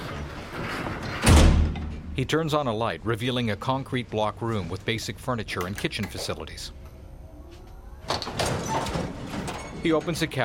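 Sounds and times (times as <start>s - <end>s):
heavy door to an underground concrete bomb shelter shut and locked: 0.9s - 2.2s, 8.1s - 10.2s
speech: 2.2s - 6.8s, 9.8s - 10.4s.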